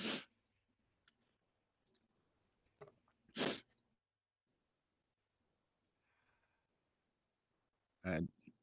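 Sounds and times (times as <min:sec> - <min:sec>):
person blowing nose hard: 0:00.0 - 0:00.3, 0:03.3 - 0:03.7.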